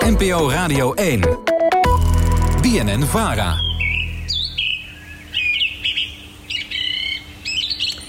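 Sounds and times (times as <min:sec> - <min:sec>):
speech: 0:00.2 - 0:01.5, 0:02.6 - 0:03.6
song thrush singing: 0:03.4 - 0:08.0.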